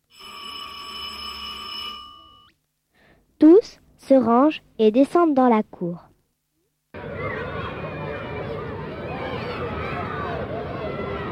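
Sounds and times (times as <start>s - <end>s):
loud electric school bell ringing for the break: 0.1s - 2.5s
speech: 4.1s - 6.1s.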